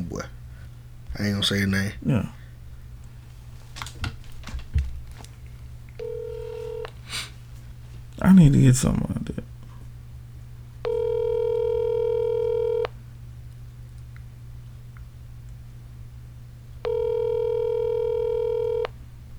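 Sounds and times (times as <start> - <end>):
low constant hum: 0.0 - 19.3
speech: 1.2 - 2.4, 8.3 - 9.5
outgoing phone call electronic ringback tone: 6.0 - 6.9, 10.8 - 12.9, 16.8 - 18.9.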